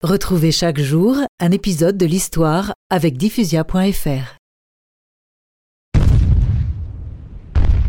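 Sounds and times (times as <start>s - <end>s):
speech: 0.0s - 4.4s
French fleet cannon shots bombarding Tourane: 5.9s - 7.8s.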